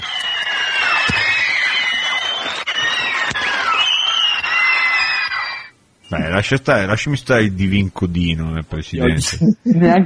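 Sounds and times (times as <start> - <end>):
crowd applauding and cheering: 0.0 - 5.7
high shouts and whistles: 0.0 - 6.3
speech: 6.4 - 10.0.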